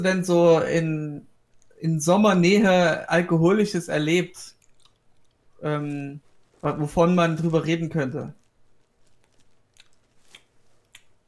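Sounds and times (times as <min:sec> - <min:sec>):
speech: 0:00.0 - 0:04.6, 0:05.6 - 0:08.4
chewing grapes: 0:04.5 - 0:07.5, 0:08.2 - 0:11.2.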